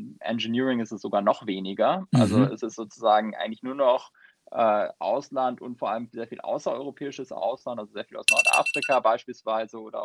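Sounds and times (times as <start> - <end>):
speech: 0.2 - 10.0
high-pitched electronic alarm clock ringing: 8.3 - 9.0.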